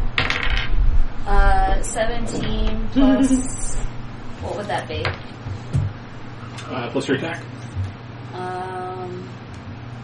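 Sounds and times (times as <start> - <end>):
dice rolling on a table during a tabletop role-playing game: 0.2 - 0.7
speech: 1.9 - 5.3, 6.7 - 7.6, 8.3 - 9.3.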